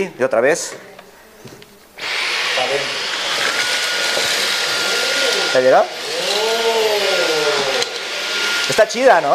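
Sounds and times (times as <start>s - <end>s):
speech: 0.0s - 1.6s, 5.5s - 6.0s, 8.7s - 9.3s
small handheld gadget vacuum cleaner running: 2.0s - 9.3s.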